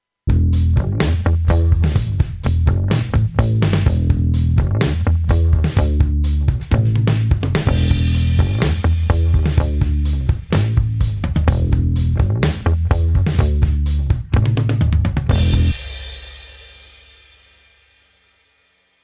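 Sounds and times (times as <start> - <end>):
bass: 0.2 - 18.4
drums: 0.3 - 19.0.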